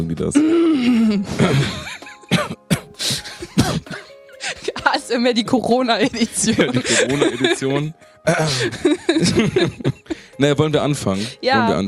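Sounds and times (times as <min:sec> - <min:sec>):
speech: 0:00.0 - 0:02.5, 0:05.0 - 0:11.8
laughter: 0:01.0 - 0:10.6
person coughing into microphone: 0:01.4 - 0:04.9
person clearing throat into microphone: 0:02.3 - 0:04.2.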